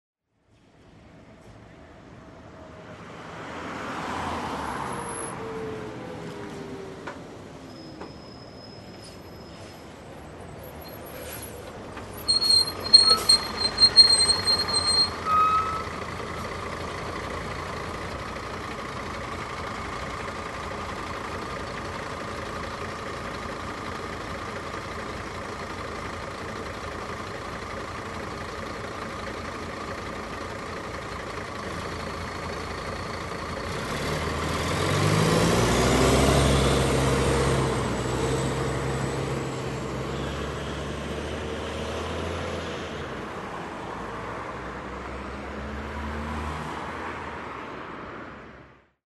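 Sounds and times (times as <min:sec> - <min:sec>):
bus arriving: 0:00.4 - 0:49.0
trolleybus arriving: 0:04.4 - 0:43.4.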